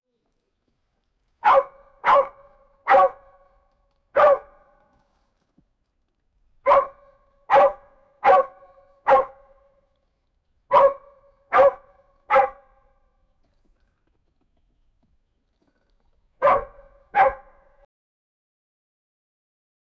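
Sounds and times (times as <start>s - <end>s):
horse barking: 1.4s - 3.5s, 4.2s - 4.9s, 6.6s - 9.7s, 10.7s - 13.0s, 16.4s - 17.8s.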